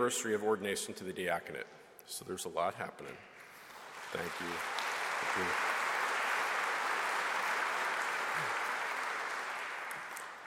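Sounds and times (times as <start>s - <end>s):
speech: 0.0s - 3.4s, 4.1s - 5.8s
large crowd applauding: 3.7s - 10.4s.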